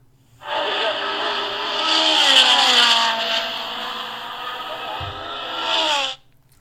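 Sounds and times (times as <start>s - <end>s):
cars racing by with revving engines: 0.4s - 6.2s.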